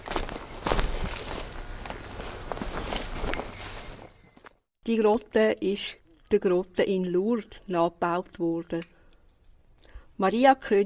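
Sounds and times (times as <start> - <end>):
footsteps walking outdoors with soft crunching strides: 0.0 - 4.6
chirping insects or crickets: 0.0 - 8.2
speech: 4.8 - 8.9, 10.2 - 10.8.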